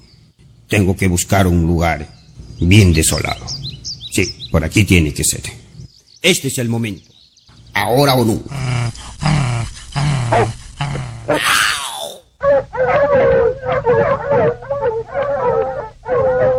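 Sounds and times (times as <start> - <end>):
speech: 0.7 - 3.6, 4.2 - 7.1, 7.8 - 8.7, 11.3 - 11.7
dogs attacking and growling: 8.4 - 11.5, 12.4 - 16.5.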